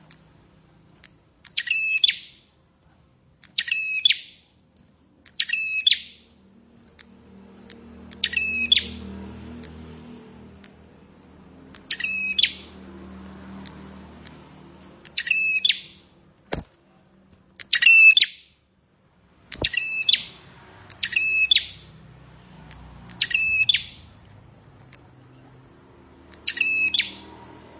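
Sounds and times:
low noise: 0.0s - 27.7s
plain prinia harsh buzzy song: 1.4s - 2.6s, 3.5s - 4.6s, 5.3s - 6.4s, 7.6s - 10.7s, 11.6s - 16.6s, 17.6s - 18.6s, 19.5s - 24.2s, 25.9s - 27.7s.

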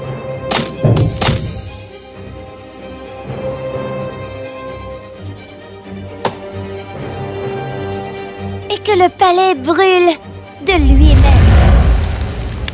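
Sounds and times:
wooden objects being chopped into small pieces in a palace: 0.5s - 1.6s, 6.2s - 6.6s
speech: 8.9s - 11.5s.

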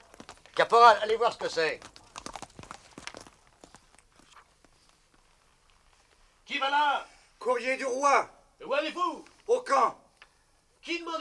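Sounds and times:
horse galloping with a rider: 0.0s - 5.4s
speech: 0.6s - 1.9s, 6.6s - 10.0s, 10.8s - 11.1s.

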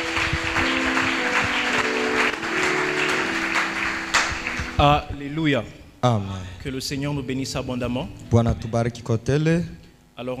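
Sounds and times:
church congregation applauding at a youth gathering: 0.0s - 5.0s
speech: 4.8s - 10.3s.

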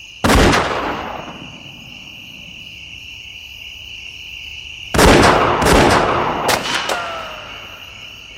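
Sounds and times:
gunshots near a train: 0.2s - 2.5s, 4.9s - 7.8s.

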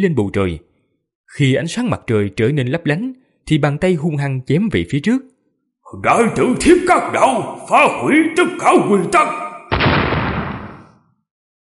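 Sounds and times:
speech: 0.0s - 0.7s, 1.3s - 5.3s, 5.9s - 9.4s
explosion sound effect: 9.7s - 11.1s.

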